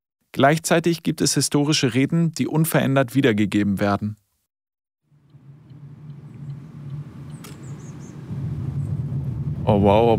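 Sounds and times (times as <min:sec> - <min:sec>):
speech: 0:00.4 - 0:04.2, 0:09.7 - 0:10.1
car engine and road rumble driving through a palace park: 0:05.1 - 0:10.1.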